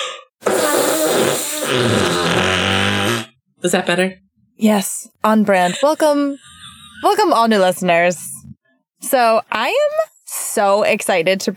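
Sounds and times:
hand fart: 0.0 - 3.4
speech: 3.6 - 8.3, 9.0 - 11.5.

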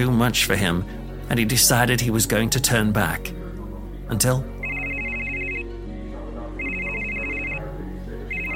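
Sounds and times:
speech: 0.0 - 3.4, 4.1 - 4.5
steady musical background: 0.0 - 8.5
cell phone ringing with a bright electronic trill: 4.6 - 5.9, 6.5 - 8.5.

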